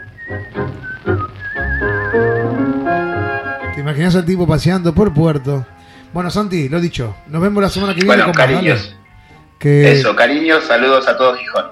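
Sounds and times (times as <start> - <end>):
man whistling a melody: 0.0 - 3.8
speech: 3.9 - 9.0, 9.6 - 11.7
low steady tonal backing: 4.6 - 11.7.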